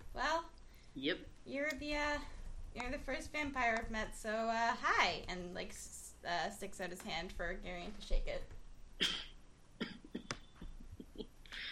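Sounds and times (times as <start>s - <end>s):
speech: 1.0s - 9.2s
forced coughing to stifle laughter: 9.0s - 10.7s.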